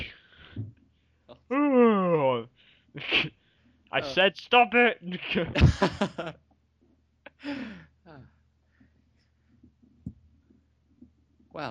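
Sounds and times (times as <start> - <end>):
yawn: 1.5 - 2.3
speech: 4.0 - 6.4
laughter: 5.2 - 6.4
breathy exhales: 7.4 - 7.9.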